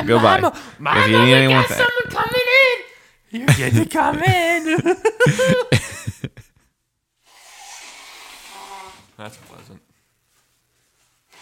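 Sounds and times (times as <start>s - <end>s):
speech: 0.0s - 2.4s, 3.3s - 6.4s, 9.2s - 9.8s
laughter: 0.0s - 2.5s, 3.4s - 6.7s
voiced coughing or throat-clearing bursts: 3.5s - 6.3s
person blowing their nose: 7.2s - 9.2s.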